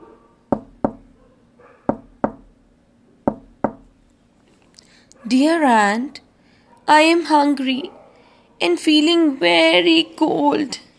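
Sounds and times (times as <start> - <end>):
knocking on a wooden door: 0.5 - 1.1, 1.9 - 2.5, 3.3 - 3.9
speech: 5.3 - 6.2, 6.9 - 8.0, 8.6 - 10.8.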